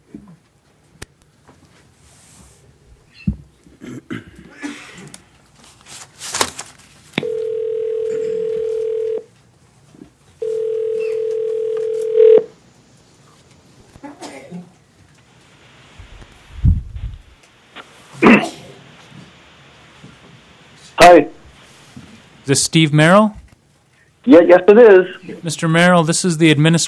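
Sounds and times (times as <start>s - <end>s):
telephone call ringing tones over a speakerphone: 7.2s - 9.3s, 10.4s - 12.5s
speech: 21.1s - 21.4s, 22.5s - 23.4s, 24.3s - 26.8s.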